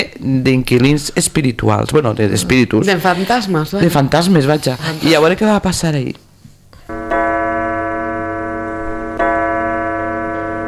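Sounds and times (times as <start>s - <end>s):
speech: 0.0s - 6.2s
clock chime with slow resonant strikes: 6.9s - 10.6s.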